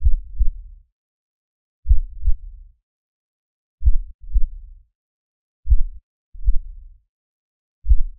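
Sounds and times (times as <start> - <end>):
heartbeat stopping: 0.0 - 0.7, 1.9 - 2.6, 3.8 - 4.8, 5.7 - 6.9, 7.8 - 8.1.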